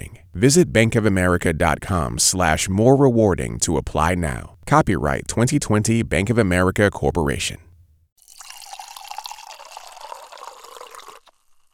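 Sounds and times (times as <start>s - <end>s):
speech: 0.4s - 7.7s
drink pouring into a glass: 8.2s - 11.7s.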